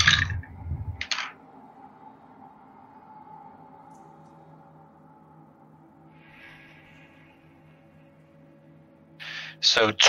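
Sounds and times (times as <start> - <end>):
dice scraping rattle as they are scooped up: 0.0 - 1.4
speech: 9.6 - 10.0.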